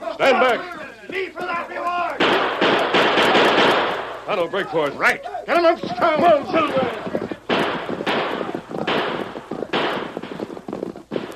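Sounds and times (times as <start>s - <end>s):
speech: 0.2s - 2.6s, 4.3s - 7.1s
rapid gunshots with long crackling decay: 1.4s - 4.4s, 5.5s - 11.3s.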